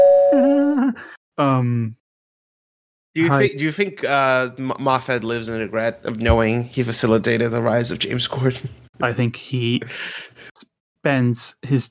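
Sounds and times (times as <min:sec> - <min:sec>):
person singing a ding-dong imitating a doorbell: 0:00.0 - 0:00.9
speech: 0:00.3 - 0:02.0, 0:03.2 - 0:10.4, 0:11.0 - 0:11.8.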